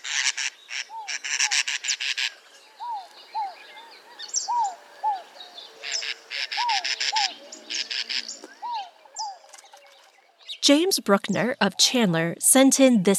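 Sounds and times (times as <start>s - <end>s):
cactus wren harsh raspy chattering: 0.0s - 12.0s
speech: 10.7s - 13.1s.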